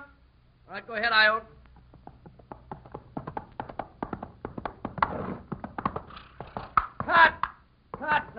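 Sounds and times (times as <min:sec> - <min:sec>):
speech: 0:00.8 - 0:01.6
ridden horse hooves clip-clopping: 0:01.6 - 0:08.3.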